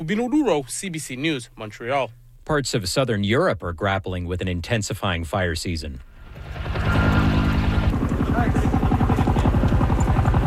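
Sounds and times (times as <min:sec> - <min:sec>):
speech: 0:00.0 - 0:06.7
helicopter rotor chopping while dropping water on a wildfire: 0:06.2 - 0:10.4.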